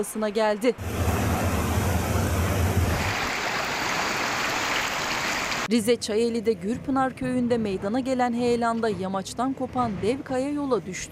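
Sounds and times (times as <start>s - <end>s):
speech: 0.0s - 1.2s, 5.7s - 11.1s
floodwater from an overflowing stream rushing: 0.8s - 5.7s.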